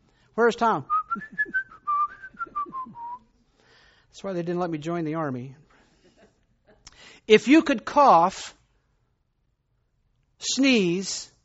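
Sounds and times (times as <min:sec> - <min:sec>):
speech: 0:00.4 - 0:01.6, 0:04.2 - 0:05.6, 0:07.2 - 0:08.6, 0:10.4 - 0:11.3
person whistling a melodic tune: 0:00.9 - 0:03.3.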